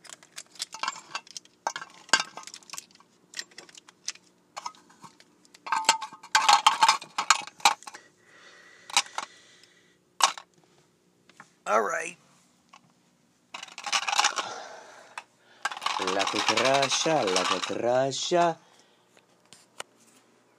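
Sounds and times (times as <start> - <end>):
pencils markers and pens dropped behind a desk clattering: 0.0 - 8.0, 8.9 - 9.3, 10.2 - 10.5, 13.5 - 14.5, 15.1 - 18.6
speech: 16.3 - 18.6.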